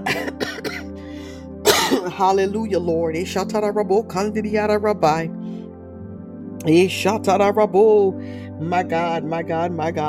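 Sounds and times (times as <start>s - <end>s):
throat clearing: 0.0s - 0.9s, 1.7s - 2.1s
person coughing: 0.0s - 1.0s, 1.6s - 2.2s
speech: 2.0s - 5.4s, 6.6s - 10.0s.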